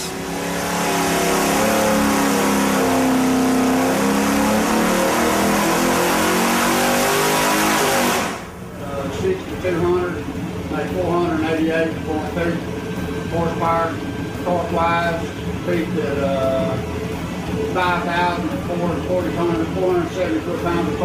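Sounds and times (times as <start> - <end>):
Pontiac Super Duty V8 engine revving at full throttle: 0.0 - 21.0.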